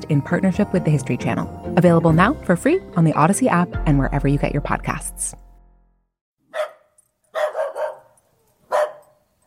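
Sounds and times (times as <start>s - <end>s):
speech: 0.0s - 5.4s
dog barking: 6.5s - 9.2s.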